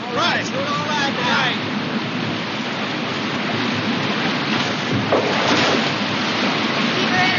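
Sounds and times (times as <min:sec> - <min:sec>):
rushing churning whitewater in river rapids: 0:00.0 - 0:07.3
water splash: 0:02.6 - 0:07.3.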